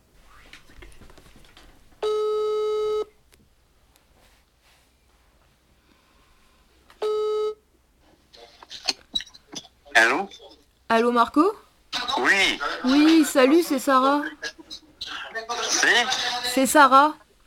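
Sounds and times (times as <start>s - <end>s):
soft rustling: 0.0s - 2.0s, 3.3s - 6.9s
telephone ringing tone: 2.0s - 3.1s, 7.0s - 7.6s
speech: 10.1s - 11.6s, 12.2s - 14.4s, 15.9s - 17.2s.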